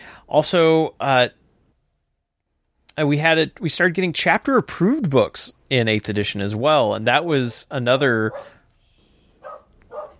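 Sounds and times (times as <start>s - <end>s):
speech: 0.3s - 1.4s, 3.0s - 8.6s
dog barking sharply: 8.3s - 8.6s, 9.4s - 10.1s.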